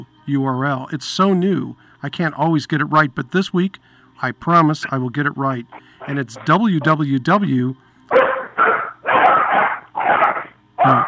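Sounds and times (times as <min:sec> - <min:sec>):
speech: 0:00.0 - 0:08.7
dog yelping and barking: 0:08.1 - 0:11.0.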